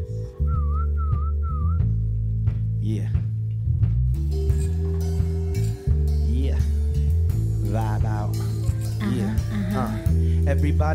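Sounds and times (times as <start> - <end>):
deep constant low hum: 0.0 - 10.5
whistled tune: 0.2 - 2.0
speech: 2.9 - 3.2, 10.5 - 10.9.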